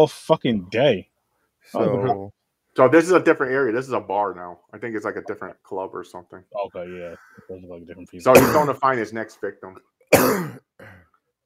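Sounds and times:
speech: 0.0s - 10.6s
person coughing: 8.3s - 8.8s, 10.1s - 11.1s
person clearing throat: 8.4s - 8.7s, 10.2s - 11.2s.

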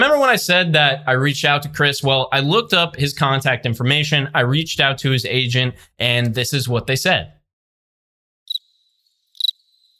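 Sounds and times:
speech: 0.2s - 7.4s
high-pitched cricket chirps: 8.5s - 9.9s.

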